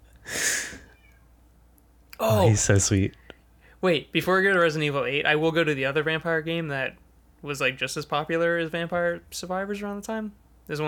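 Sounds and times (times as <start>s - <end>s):
cat meowing: 0.8s - 1.3s
speech: 2.2s - 3.2s, 3.8s - 10.8s.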